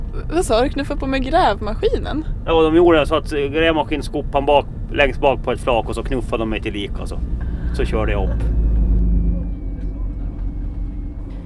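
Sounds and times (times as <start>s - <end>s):
faint road noise: 0.0s - 11.4s
truck engine rumble on winding country roads: 0.0s - 11.4s
speech: 0.2s - 8.6s.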